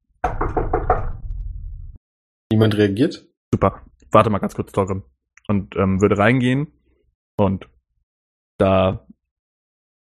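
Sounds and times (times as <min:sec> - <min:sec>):
knocking on a wooden door: 0:00.2 - 0:01.3
speech: 0:02.6 - 0:06.8, 0:07.4 - 0:07.8, 0:08.6 - 0:09.2.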